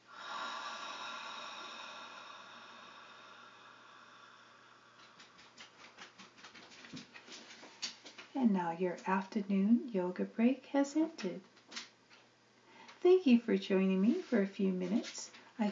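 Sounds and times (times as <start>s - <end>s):
long exhale through an open mouth during a breathing exercise: 0.0s - 5.4s
faint rhythmic rustling: 4.2s - 15.7s
speech: 8.4s - 11.5s, 13.0s - 15.7s.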